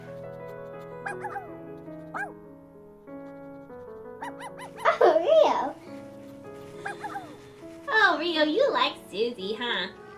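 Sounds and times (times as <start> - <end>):
dog whimpering: 1.1 - 1.5, 4.2 - 5.2, 6.8 - 7.4
speech: 1.1 - 1.5, 8.4 - 10.0.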